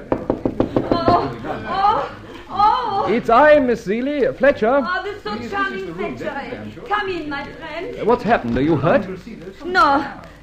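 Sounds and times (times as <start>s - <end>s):
fairly loud knocks on the door of a room: 0.0s - 1.3s
laughter: 0.8s - 3.2s
speech: 3.1s - 10.2s.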